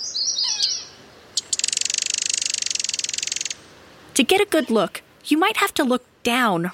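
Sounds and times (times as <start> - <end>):
common yellowthroat singing outdoors: 0.0 - 3.6
speech: 4.2 - 6.7.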